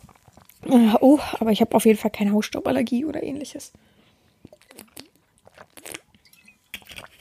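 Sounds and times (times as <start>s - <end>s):
person sipping and swallowing water: 0.0s - 0.7s, 4.3s - 7.1s
speech: 0.7s - 4.0s.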